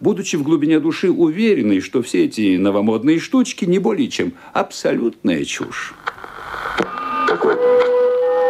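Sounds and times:
speech: 0:00.0 - 0:06.1, 0:06.8 - 0:07.9
sharp radio static crackles and pops: 0:05.4 - 0:07.9
steady radio static hiss: 0:05.5 - 0:07.6
thin whistling tones from a radio set being tuned: 0:06.9 - 0:08.4.

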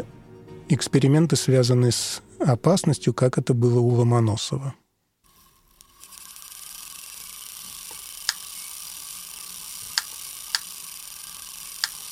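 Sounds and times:
speech: 0:00.7 - 0:04.8
electrostatic influence machine running with high hiss and whir: 0:05.3 - 0:12.1
electrostatic influence machine spark cracks: 0:09.7 - 0:12.1.

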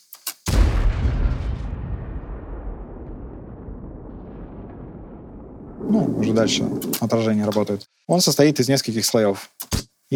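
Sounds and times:
mechanical clicks of a large-caliber tank cannon: 0:00.0 - 0:00.5
large-caliber tank cannon firing: 0:00.5 - 0:07.2
speech: 0:05.8 - 0:10.1.

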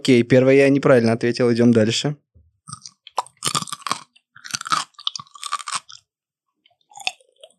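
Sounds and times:
speech: 0:00.0 - 0:02.2
crisp cucumber being bitten and chewed: 0:02.6 - 0:06.1, 0:06.7 - 0:07.5.

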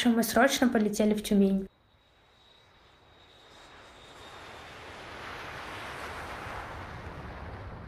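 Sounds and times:
speech: 0:00.0 - 0:01.7
airplane engine roaring in flight: 0:02.0 - 0:07.8.

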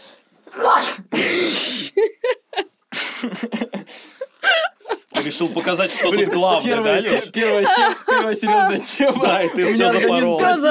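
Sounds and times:
person sneezing after a breathy build-up: 0:00.5 - 0:02.0
people laughing: 0:01.2 - 0:10.7
people chattering: 0:03.9 - 0:10.7
speech: 0:05.4 - 0:10.7.

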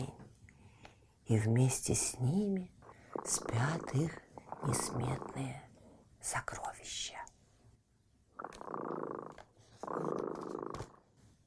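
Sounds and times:
speech: 0:01.3 - 0:07.2
cat purring softly: 0:01.7 - 0:05.9, 0:08.3 - 0:11.0.

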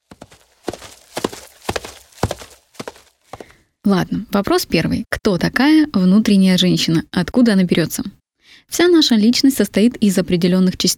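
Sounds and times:
horse hooves clip-clopping at a walking pace: 0:00.0 - 0:03.6
speech: 0:03.9 - 0:10.9.

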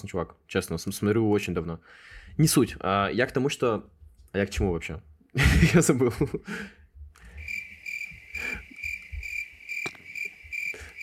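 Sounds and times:
speech: 0:00.0 - 0:06.8
laughter: 0:05.4 - 0:06.6
crickets chirping: 0:07.2 - 0:11.0.

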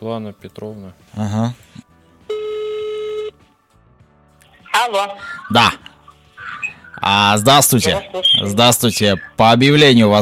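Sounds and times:
speech: 0:00.0 - 0:01.8, 0:04.8 - 0:05.8, 0:07.0 - 0:10.2
telephone tone from a call being placed: 0:02.3 - 0:03.4.

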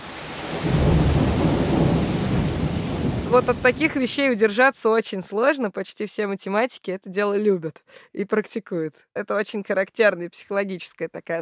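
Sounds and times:
rain hissing: 0:00.0 - 0:03.9
thunder rumbling during a thunderstorm: 0:00.3 - 0:04.0
speech: 0:03.3 - 0:11.3.

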